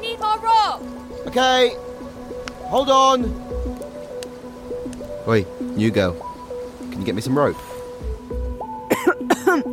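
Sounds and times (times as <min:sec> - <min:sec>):
speech: 0:00.2 - 0:01.9, 0:02.7 - 0:03.4, 0:05.3 - 0:06.3, 0:07.0 - 0:07.7
people coughing amid worsening air pollution: 0:08.9 - 0:09.7.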